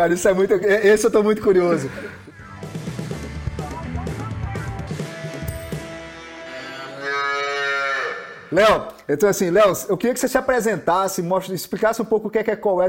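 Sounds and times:
speech: 0:00.0 - 0:02.2, 0:08.5 - 0:12.8
cow mooing: 0:06.5 - 0:08.6.

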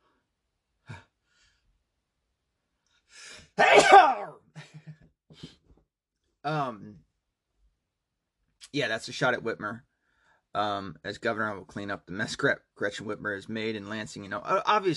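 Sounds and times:
person sneezing: 0:03.6 - 0:04.4
short voiced groan: 0:03.6 - 0:04.4
speech: 0:06.4 - 0:07.0, 0:08.7 - 0:09.9, 0:10.6 - 0:14.9.

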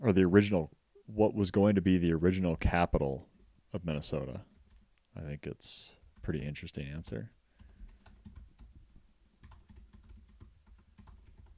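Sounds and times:
speech: 0:00.0 - 0:04.5, 0:05.2 - 0:07.4
typing on a computer keyboard: 0:07.6 - 0:11.5.

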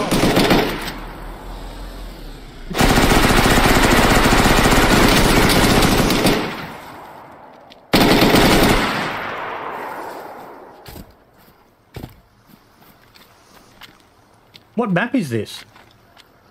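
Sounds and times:
minigun firing in a video game: 0:00.0 - 0:11.3
scattered hits: 0:00.0 - 0:11.4
speech: 0:14.8 - 0:15.7.

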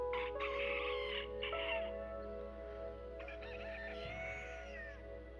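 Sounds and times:
rooster crowing with strained drawn-out calls: 0:00.1 - 0:02.0, 0:03.2 - 0:05.0.

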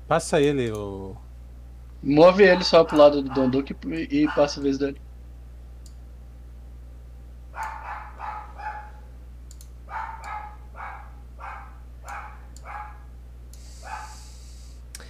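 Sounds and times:
low steady hum: 0:00.0 - 0:15.0
speech: 0:00.1 - 0:01.3, 0:02.0 - 0:05.0
dog barking: 0:02.4 - 0:04.7, 0:07.5 - 0:09.1, 0:09.9 - 0:13.1, 0:13.8 - 0:14.3.

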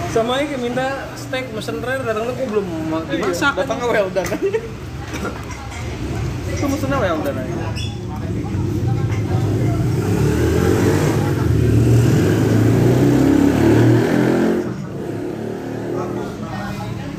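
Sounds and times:
speech: 0:00.1 - 0:05.6, 0:06.7 - 0:08.0
motorcycle engine revving: 0:08.3 - 0:16.6.

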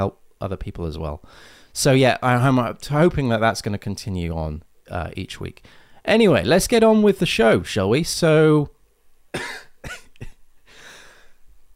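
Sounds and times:
speech: 0:00.0 - 0:10.0
person coughing: 0:09.4 - 0:10.4.

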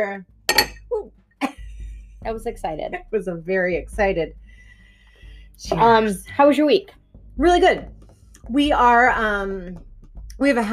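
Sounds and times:
speech: 0:00.0 - 0:00.3, 0:02.2 - 0:04.4, 0:05.6 - 0:10.7
glasses clinking in a toast: 0:00.5 - 0:00.9.

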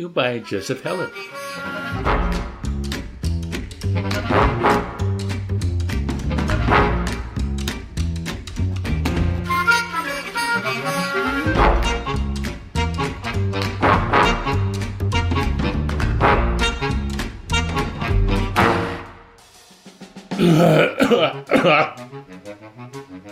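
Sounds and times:
speech: 0:00.0 - 0:02.5
rhythmic music: 0:00.4 - 0:23.3
coughing: 0:20.3 - 0:22.2
throat clearing: 0:20.4 - 0:22.1.

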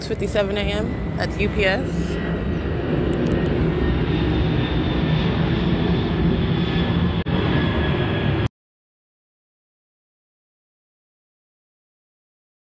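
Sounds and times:
airplane engine roar flying overhead: 0:00.0 - 0:08.5
speech: 0:00.1 - 0:02.2.

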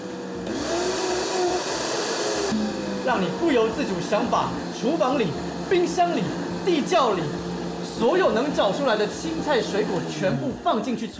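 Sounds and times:
juicer motor running with spiral blades spinning: 0:00.0 - 0:11.1
speech: 0:03.1 - 0:07.4, 0:08.0 - 0:11.1.

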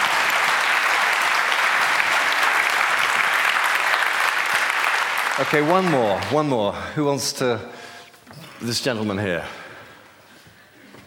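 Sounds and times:
audience applause after a prayer: 0:00.0 - 0:06.8
speech: 0:05.4 - 0:07.9, 0:08.6 - 0:09.6.

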